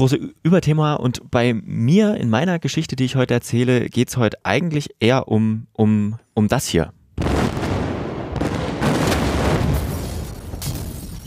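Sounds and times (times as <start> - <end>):
speech: 0.0 - 7.0
further blasts and crackling bursts: 7.2 - 11.2
loud explosion rumbling: 7.2 - 11.2.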